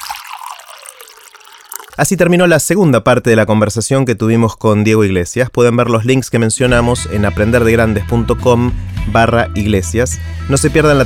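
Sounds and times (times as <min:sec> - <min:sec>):
water being poured into a glass: 0:00.0 - 0:02.2
speech: 0:02.0 - 0:11.0.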